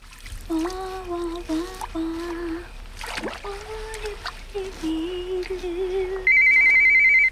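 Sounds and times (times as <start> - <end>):
splashing in a candlelit bath: 0.0 - 6.3
cordless phone ringing with electronic trill: 6.3 - 7.2.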